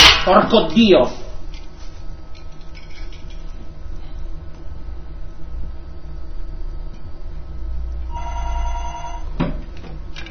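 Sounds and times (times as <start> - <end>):
speech: 0.2 - 1.2
telephone bell ringing: 8.1 - 9.4.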